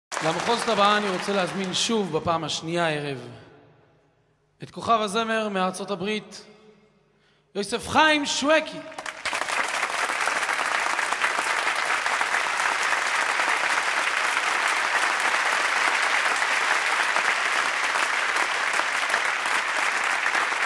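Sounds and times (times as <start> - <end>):
large audience applauding at a live concert: 0.0 - 2.3, 8.9 - 20.6
speech: 0.2 - 3.4, 4.6 - 6.5, 7.6 - 9.0.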